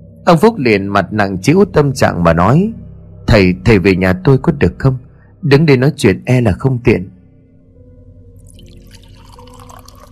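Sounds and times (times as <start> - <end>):
speech: 0.3 - 7.1
tea poured into a cup to serve a monk: 8.4 - 10.1.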